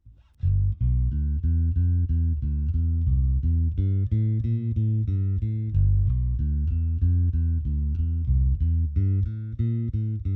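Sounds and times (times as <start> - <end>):
bass through amp, miked 1in from grill and 3in from cone centre: 0.0 - 10.3.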